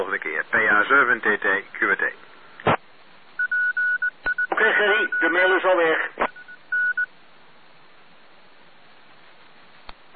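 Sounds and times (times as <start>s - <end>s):
speech: 0.0s - 2.3s, 4.6s - 6.2s
steady hiss: 0.0s - 10.1s
telephone keypad dialing tones: 3.4s - 4.5s.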